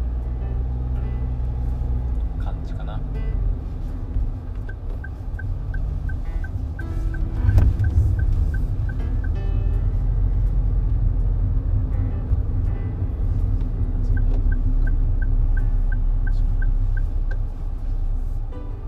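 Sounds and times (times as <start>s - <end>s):
car driving and changing lanes with constant low engine rumble: 0.0s - 18.8s
road noise: 0.0s - 18.8s.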